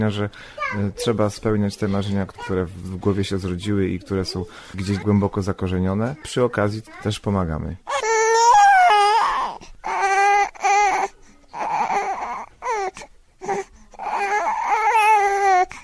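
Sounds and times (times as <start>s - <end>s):
speech: 0.0s - 7.9s
babies crying at the same time: 7.9s - 15.8s.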